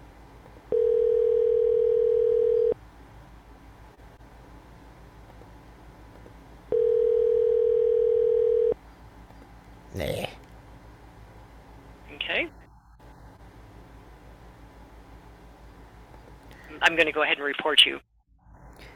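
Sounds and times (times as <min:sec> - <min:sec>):
telephone ringback tones during an unanswered call: 0:00.7 - 0:02.8, 0:06.7 - 0:08.8
speech: 0:16.9 - 0:18.1.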